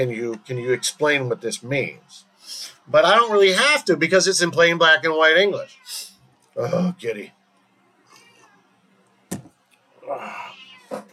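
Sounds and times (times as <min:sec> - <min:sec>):
speech: 0:00.0 - 0:07.4
quiet hum: 0:00.0 - 0:11.1
cat meowing and wailing: 0:05.4 - 0:06.2, 0:10.1 - 0:11.1.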